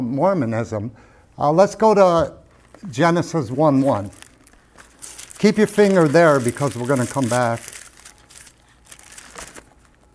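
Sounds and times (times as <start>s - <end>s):
speech: 0.0s - 4.2s, 5.4s - 7.8s
paper rustling while marking a Bible page: 2.5s - 10.1s.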